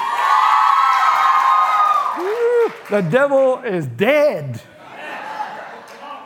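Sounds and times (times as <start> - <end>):
crowd of women in an audience cheering in high voices: 0.0 - 2.8
sharp rising whoop: 0.0 - 2.8
scattered clapping: 0.0 - 3.8, 5.7 - 6.2
speech: 2.9 - 4.7.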